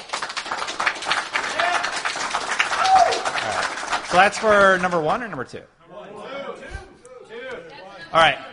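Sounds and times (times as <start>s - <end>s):
small group clapping together as a show of hands: 0.0s - 5.6s
speech: 3.2s - 5.8s, 8.1s - 8.5s.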